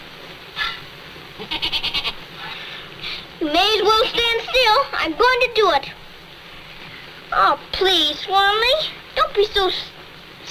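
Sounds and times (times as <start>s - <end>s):
goat bleating: 1.4s - 2.2s
speech: 3.4s - 6.0s, 7.3s - 9.9s.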